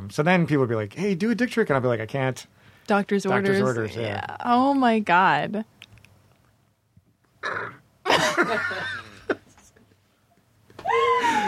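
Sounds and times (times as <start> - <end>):
speech: 0.1 - 5.7, 7.4 - 9.0
loud drawn-out burp: 7.4 - 7.8
laughter: 8.1 - 9.8.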